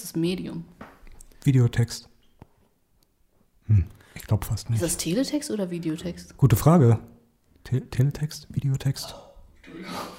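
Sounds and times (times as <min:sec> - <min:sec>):
speech: 0:00.2 - 0:00.8, 0:01.4 - 0:02.1, 0:03.7 - 0:10.1
sneeze: 0:09.1 - 0:10.1.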